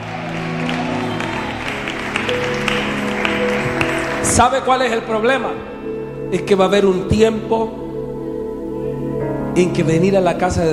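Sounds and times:
audience in a church applauding: 0.0s - 5.5s
sustained musical tones: 0.0s - 10.7s
speech: 4.4s - 7.8s, 9.6s - 10.7s.

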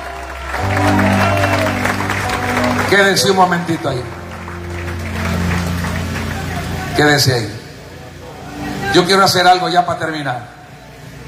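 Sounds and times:
congregation applauding in a church: 0.0s - 8.0s
speech: 2.9s - 4.2s, 7.0s - 7.6s, 8.9s - 10.6s.

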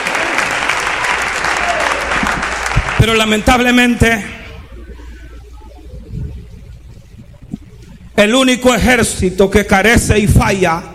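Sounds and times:
audience applauding loudly: 0.0s - 3.8s
speech: 3.0s - 4.4s, 8.2s - 10.9s.

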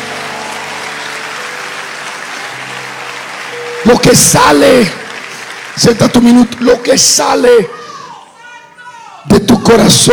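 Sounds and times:
church audience applauding during a sermon: 0.0s - 7.8s
speech: 3.9s - 5.0s, 5.8s - 7.9s, 9.4s - 10.1s.

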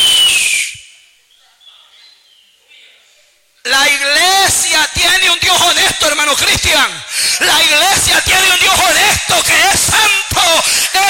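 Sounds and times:
loud high whistle with breathy hiss: 0.0s - 1.1s
speech: 3.9s - 11.0s.

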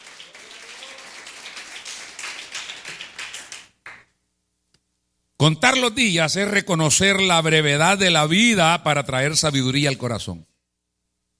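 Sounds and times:
audience applauding: 0.0s - 4.1s
speech: 5.4s - 10.5s.

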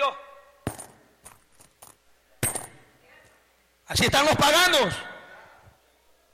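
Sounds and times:
coins being tossed and dropping: 0.7s - 2.8s
speech: 3.9s - 5.1s.

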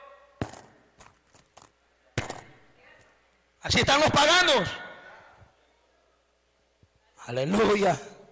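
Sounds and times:
coins clinking and dropping during a church service: 0.4s - 2.6s
speech: 3.6s - 4.8s, 7.3s - 8.1s.

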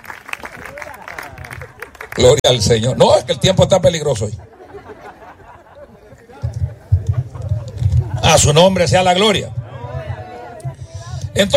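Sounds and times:
church audience clapping during a sermon: 0.0s - 2.6s
speech: 2.2s - 4.5s, 8.3s - 9.6s, 11.4s - 11.5s
laughter: 4.2s - 8.7s.

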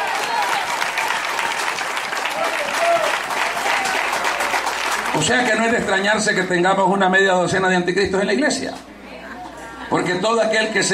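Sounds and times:
audience applauding: 0.0s - 5.8s
speech: 5.2s - 8.9s, 10.0s - 10.9s.

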